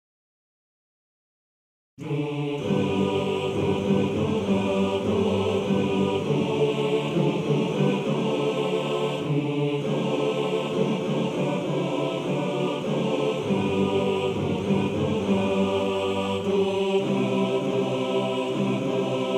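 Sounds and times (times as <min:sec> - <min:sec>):
male choir singing: 0:02.0 - 0:19.3.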